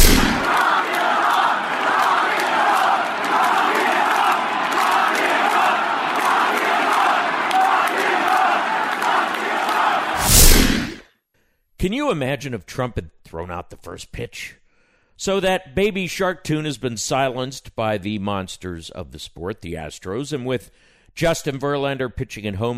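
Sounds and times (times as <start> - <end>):
huge baseball stadium crowd chanting in unison in Washington D.C.: 0.0 - 11.0
speech: 12.0 - 14.6, 15.2 - 22.7.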